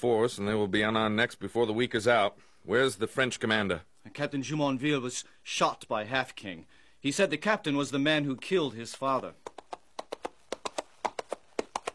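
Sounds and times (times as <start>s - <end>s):
speech: 0.0s - 9.4s
horse hooves clip-clopping at a walking rhythm: 8.4s - 11.9s.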